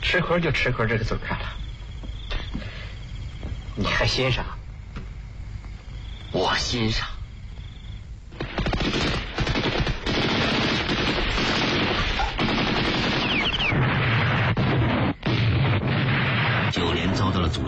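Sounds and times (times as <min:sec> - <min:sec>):
speech: 0:00.1 - 0:01.6, 0:03.8 - 0:04.6, 0:06.4 - 0:07.2
heavy machine-gun fire in battle: 0:08.3 - 0:17.1
explosions in battle: 0:08.3 - 0:17.6.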